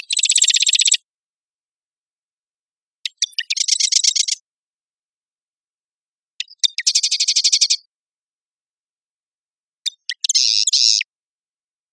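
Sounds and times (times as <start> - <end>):
Cistothorus palustris male singing in Marymoor Park, Redmond, Washington, USA: 0.0 - 1.1, 2.9 - 4.5, 6.3 - 8.0, 9.8 - 11.2.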